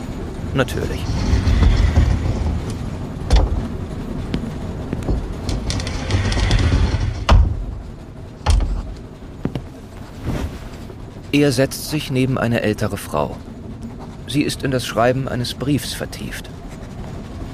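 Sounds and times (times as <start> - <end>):
train wheels clacking over rail joints: 0.0 - 9.8
last carriage of a moving train rumbling in the French countryside: 0.0 - 17.5
speech: 0.5 - 1.6, 11.3 - 13.5, 14.3 - 16.6.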